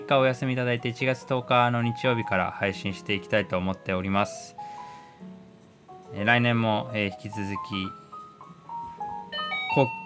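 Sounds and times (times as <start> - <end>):
speech: 0.1 - 5.3, 6.1 - 8.0, 9.8 - 10.0
loud outdoor chime melody: 9.3 - 10.0.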